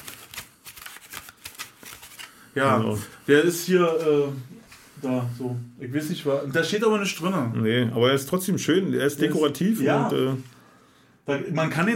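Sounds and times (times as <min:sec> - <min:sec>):
paper fortune teller flapping and rustling: 0:00.0 - 0:02.4
speech: 0:02.6 - 0:10.5, 0:11.2 - 0:11.9.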